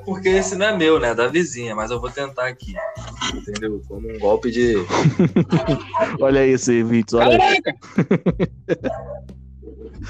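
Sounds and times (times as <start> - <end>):
speech: 0.0 - 10.0
neighbour's dog barking angrily: 2.7 - 3.2, 8.8 - 9.3
laughter: 3.0 - 6.4, 7.2 - 9.1.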